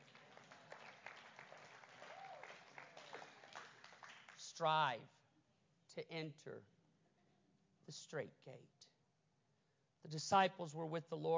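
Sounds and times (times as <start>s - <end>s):
audience clapping: 0.0s - 4.7s
speech: 4.6s - 5.2s, 6.0s - 6.8s, 7.9s - 8.9s, 10.0s - 11.3s.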